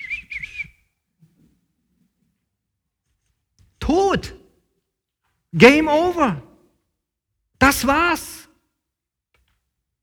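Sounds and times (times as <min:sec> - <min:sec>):
person whistling a wavering tune: 0:00.0 - 0:00.8
speech: 0:03.9 - 0:04.4, 0:05.5 - 0:06.5, 0:07.7 - 0:08.4.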